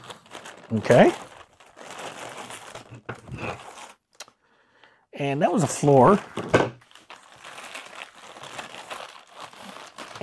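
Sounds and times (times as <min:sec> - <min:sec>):
sealed plastic bag being opened, crinkling: 0:00.0 - 0:04.0, 0:06.8 - 0:10.2
speech: 0:00.7 - 0:01.3, 0:05.2 - 0:06.8.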